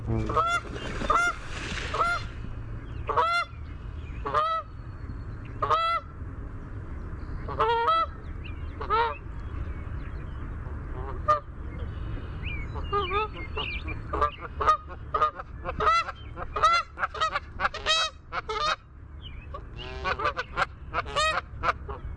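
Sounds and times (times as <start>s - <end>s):
Canada goose: 0.2s - 2.3s, 3.0s - 3.5s, 4.2s - 4.7s, 5.6s - 6.1s, 7.5s - 8.2s, 8.7s - 9.2s, 10.9s - 12.1s, 12.7s - 18.8s, 19.5s - 22.1s.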